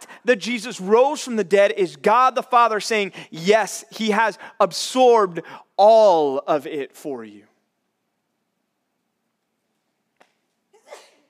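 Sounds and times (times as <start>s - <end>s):
speech: 0.2s - 7.5s
sneeze from an audience member: 10.8s - 11.2s.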